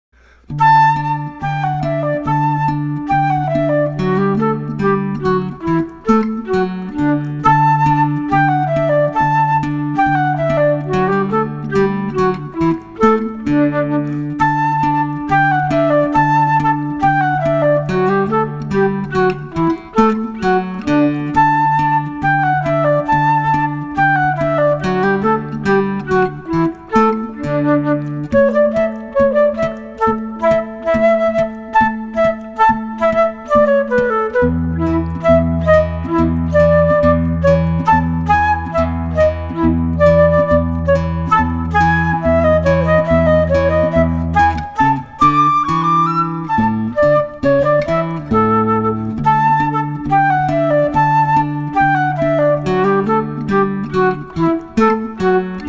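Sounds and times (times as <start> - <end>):
musette with flute: 0.4 - 55.6.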